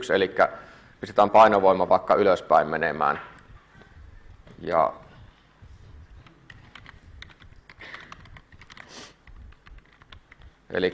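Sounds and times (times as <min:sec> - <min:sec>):
speech: 0:00.0 - 0:03.3, 0:04.6 - 0:05.0, 0:10.7 - 0:10.9
typing on a computer keyboard while writing code: 0:06.2 - 0:10.6.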